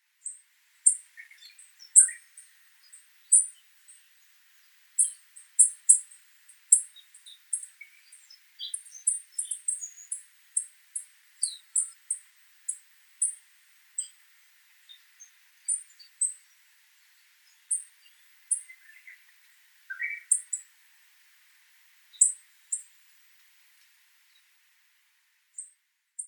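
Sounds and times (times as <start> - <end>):
Shiroharahojiro singing in Nagasaki: 0.2 - 10.7, 11.4 - 13.4, 14.8 - 20.7, 22.1 - 22.9.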